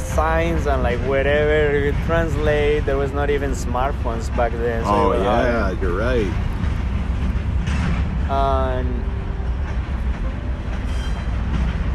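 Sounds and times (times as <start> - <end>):
rail clatter: 0.0 - 11.9
train rumbling past: 0.0 - 11.9
speech: 0.2 - 6.5, 8.3 - 9.1.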